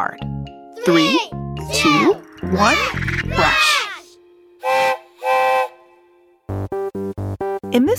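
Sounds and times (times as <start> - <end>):
speech: 0.0 - 3.8, 7.7 - 7.9
steam train whistle blasts: 4.6 - 6.2.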